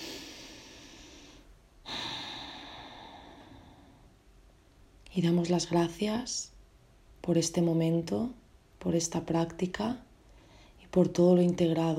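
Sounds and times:
deep inhale and exhale during a relaxation practice: 0.0 - 4.2
speech: 5.2 - 6.5, 7.2 - 10.1, 10.9 - 11.9.

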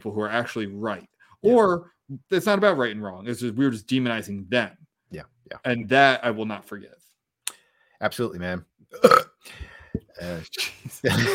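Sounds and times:
speech: 0.0 - 7.0, 8.0 - 11.3
person burping: 8.9 - 10.4.

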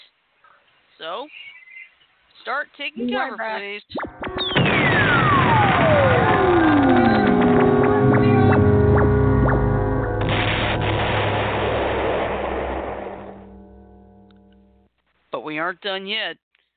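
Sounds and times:
speech: 1.0 - 1.6, 2.4 - 5.2, 15.6 - 16.4
siren-like tones: 3.9 - 14.8
long whistling tone sweeping downward in a rocket-launch sound effect: 4.0 - 10.2
dense roaring rumble of a rocket-launch sound effect: 4.5 - 14.8.

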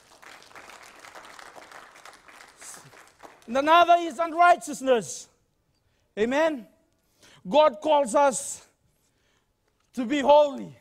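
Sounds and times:
audience hand clapping in dense applause: 0.0 - 4.0
speech: 3.5 - 5.3, 6.2 - 6.7, 7.4 - 8.6, 10.0 - 10.7.

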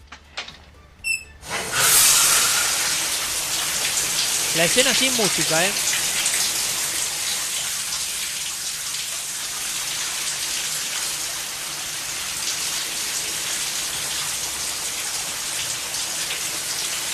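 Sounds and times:
short tonal squeak: 1.0 - 1.4
shower water running: 1.4 - 17.1
speech: 4.6 - 6.0.

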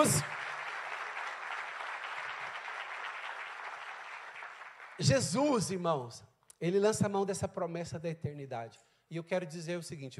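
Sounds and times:
speech: 0.0 - 0.4, 5.0 - 10.1
large crowd applauding: 0.0 - 5.4.

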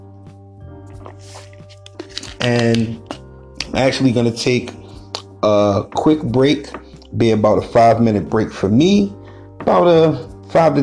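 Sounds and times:
person sipping and swallowing water: 0.9 - 3.3
speech: 1.0 - 1.8, 2.4 - 3.1, 3.7 - 4.8, 5.4 - 10.8.

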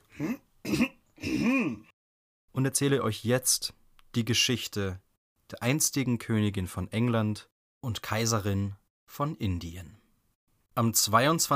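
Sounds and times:
man clearing his throat: 0.1 - 1.9
speech: 0.2 - 0.4, 2.6 - 10.0, 10.8 - 11.5.

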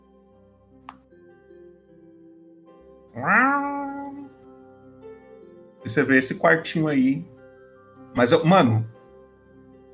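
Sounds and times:
speech: 3.2 - 3.4, 5.9 - 7.3, 8.2 - 9.0
black cat meowing on a bed: 3.2 - 4.4.

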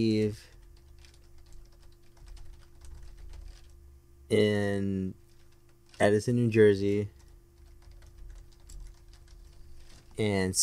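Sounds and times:
speech: 0.0 - 0.5, 4.3 - 5.2, 6.0 - 7.2, 10.2 - 10.6
rapid typing on a computer keyboard: 0.4 - 3.8, 7.2 - 10.2.

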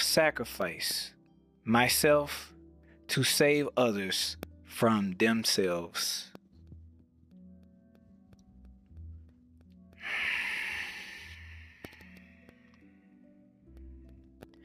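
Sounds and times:
speech: 0.2 - 2.5, 3.1 - 6.3
slow exhaling breath: 10.0 - 12.6.

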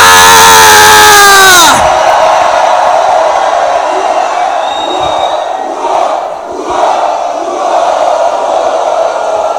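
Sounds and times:
large crowd shouting and cheering for joy: 0.0 - 9.5.

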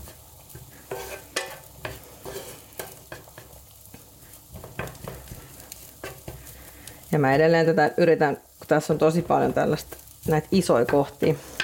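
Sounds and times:
utensil scraping and stirring food in a pan: 0.0 - 6.6, 9.1 - 11.6
salted food sizzling and crackling in a hot oiled pan: 0.0 - 11.6
speech: 7.1 - 11.5.

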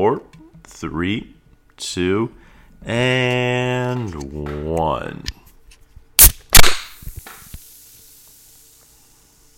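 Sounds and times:
speech: 0.0 - 5.4
beer can cracking open with sharp metallic pops: 6.2 - 7.7
soft fizzing hiss of beer: 6.8 - 9.5.

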